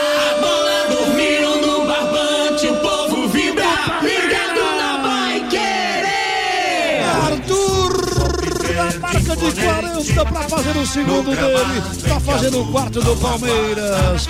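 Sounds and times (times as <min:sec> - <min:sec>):
packed stadium crowd cheering and yelling celebrating a goal: 0:00.0 - 0:09.0
speech: 0:09.4 - 0:14.2.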